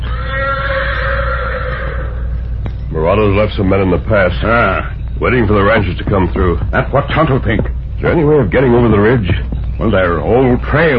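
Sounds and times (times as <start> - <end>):
black horse whinnying in answer to another horse: 0.0 - 2.6
speech: 3.1 - 10.9.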